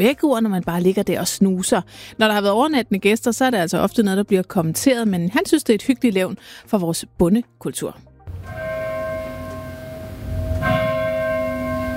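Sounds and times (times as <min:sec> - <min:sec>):
speech: 0:00.0 - 0:08.6
church bells ringing: 0:08.3 - 0:11.9.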